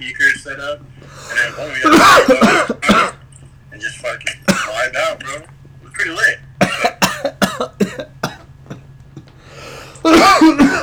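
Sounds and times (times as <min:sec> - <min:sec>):
speech: 0:00.0 - 0:02.7
person coughing sharp dry coughs: 0:01.1 - 0:03.3, 0:04.4 - 0:05.4, 0:06.6 - 0:10.8.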